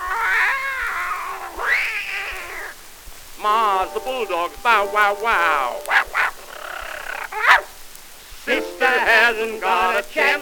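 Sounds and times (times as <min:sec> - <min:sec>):
cat meowing and yowling: 0:00.0 - 0:02.8, 0:05.5 - 0:07.7
speech: 0:03.4 - 0:06.0, 0:08.5 - 0:10.4.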